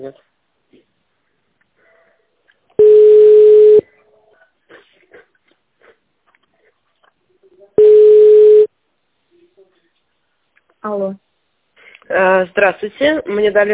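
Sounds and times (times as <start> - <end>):
speech: 0.0 - 0.8, 10.9 - 11.2, 12.1 - 13.7
telephone line tones during a call transfer: 2.8 - 3.8, 7.8 - 8.7.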